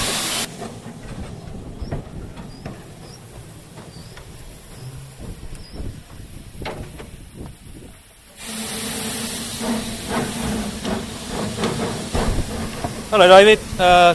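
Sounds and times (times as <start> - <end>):
steam locomotive injector feeding water into boiler: 0.0 - 0.5, 3.9 - 14.1
clanks and knocks: 0.5 - 7.6, 9.5 - 13.9
speech: 13.1 - 14.1.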